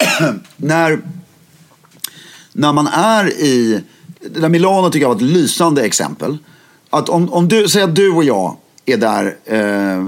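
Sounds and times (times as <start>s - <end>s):
person coughing: 0.0s - 0.5s
speech: 0.2s - 1.2s, 2.6s - 10.0s.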